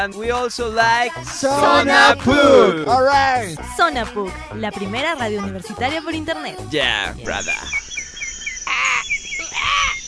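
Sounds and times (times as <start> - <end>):
speech: 0.0 - 7.8
faint high chirping: 7.3 - 10.0
crow cawing: 7.6 - 10.0.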